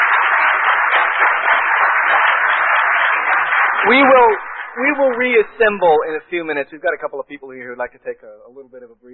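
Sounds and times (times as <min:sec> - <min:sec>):
audience applauding a contestant at a debate: 0:00.0 - 0:06.4
speech: 0:03.8 - 0:09.1.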